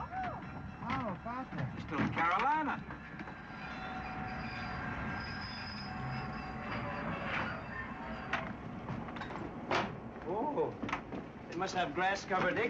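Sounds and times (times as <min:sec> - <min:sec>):
faint metallic squealing from train wheels: 0:00.0 - 0:09.7
train rolling along the rails: 0:00.0 - 0:12.6
speech: 0:01.2 - 0:03.0, 0:11.6 - 0:12.6.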